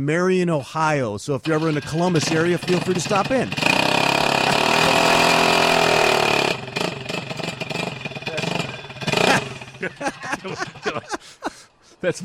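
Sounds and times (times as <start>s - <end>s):
speech: 0.0s - 3.9s, 4.8s - 5.3s, 9.8s - 11.0s, 12.0s - 12.2s
racing lawnmower engine revving: 1.4s - 11.2s
laughter: 8.2s - 12.2s.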